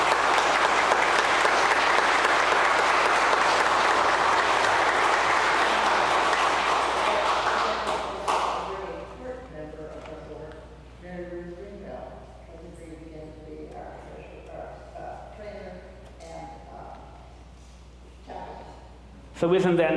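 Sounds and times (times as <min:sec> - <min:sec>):
large audience applauding: 0:00.0 - 0:08.9
speech: 0:19.4 - 0:19.9.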